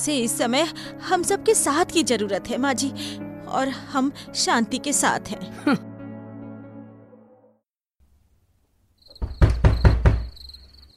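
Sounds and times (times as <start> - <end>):
speech: 0.0 - 5.9
faint crickets chirping: 8.9 - 10.9
knocking on a door: 9.1 - 10.6.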